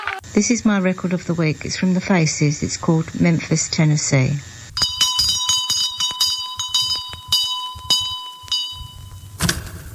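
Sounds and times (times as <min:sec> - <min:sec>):
speech: 0:00.4 - 0:04.5
bell ringing in a quick series of sharp strikes: 0:04.8 - 0:09.4.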